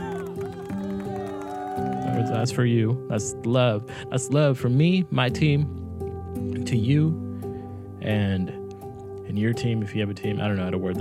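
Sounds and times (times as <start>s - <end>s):
small team cheering and whooping: 0.0s - 2.5s
light clapping: 0.1s - 2.4s
speech: 2.1s - 5.8s, 6.6s - 7.2s, 8.0s - 8.6s, 9.3s - 11.0s.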